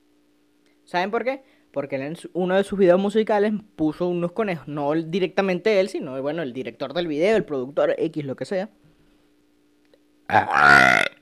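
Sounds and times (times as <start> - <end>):
faint steady hum: 0.0 - 11.2
speech: 0.9 - 8.8, 10.3 - 11.0
loud drawn-out resonant burp: 10.3 - 11.2.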